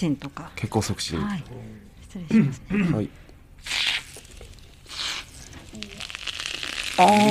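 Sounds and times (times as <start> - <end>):
speech: 0.0 - 3.8, 7.0 - 7.2
carbonated spray fizzing on the scalp during a head spa: 3.6 - 7.2.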